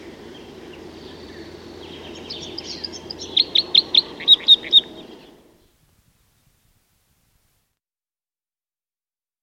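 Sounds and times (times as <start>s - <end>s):
crossbill calls: 0.0s - 5.4s.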